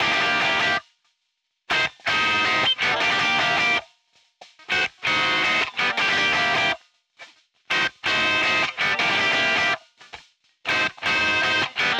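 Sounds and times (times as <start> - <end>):
stabby guitar: 0.0 - 0.8, 1.7 - 3.8, 4.7 - 6.8, 7.7 - 9.8, 10.7 - 11.9.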